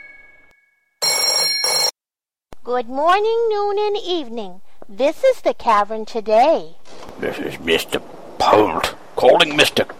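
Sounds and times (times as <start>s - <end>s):
telephone bell ringing: 0.0s - 2.0s
speech: 2.6s - 9.9s.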